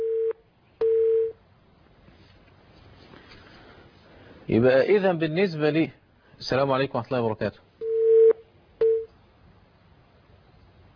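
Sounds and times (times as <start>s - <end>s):
electronic telephone tone signalling an incoming call: 0.0s - 1.4s, 7.8s - 9.1s
speech: 4.5s - 7.7s.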